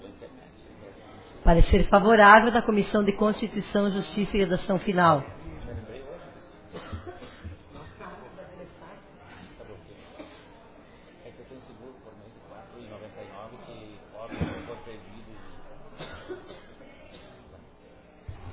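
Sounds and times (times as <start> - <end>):
murmur of indistinct speech in a reverberant room: 0.0 - 18.5
speech: 1.5 - 5.4
person coughing: 14.3 - 14.8, 16.0 - 17.3.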